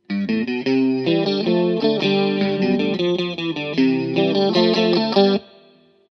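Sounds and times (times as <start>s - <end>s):
electric guitar: 0.0s - 5.8s.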